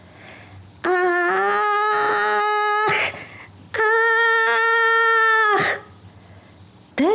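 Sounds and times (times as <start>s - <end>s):
piercing wailing cries: 0.8s - 6.0s.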